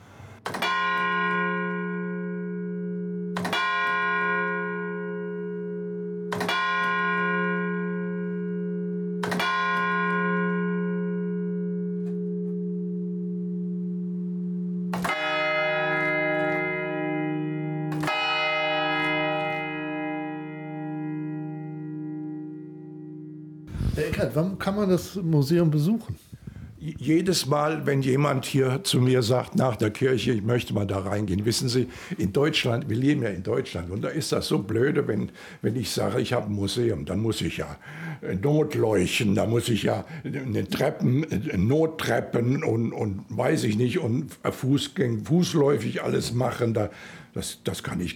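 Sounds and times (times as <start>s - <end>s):
old church bell in a tower tolling: 0.5s - 23.7s
speech: 24.2s - 48.1s.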